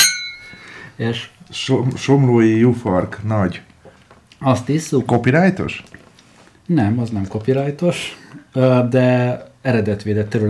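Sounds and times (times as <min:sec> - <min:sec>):
wine glasses clinking in a toast: 0:00.0 - 0:00.9
speech: 0:01.0 - 0:03.7, 0:04.4 - 0:06.0, 0:06.7 - 0:10.4.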